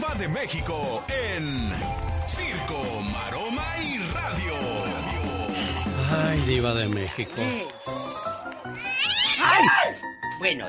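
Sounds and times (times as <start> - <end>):
speech: 0.2 - 10.6
cat meowing and yowling: 8.8 - 9.7.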